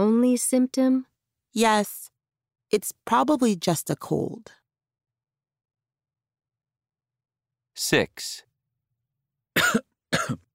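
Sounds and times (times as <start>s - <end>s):
speech: 0.0s - 2.1s, 2.7s - 4.6s, 7.8s - 8.5s, 9.6s - 10.4s
person coughing harshly: 9.6s - 10.5s.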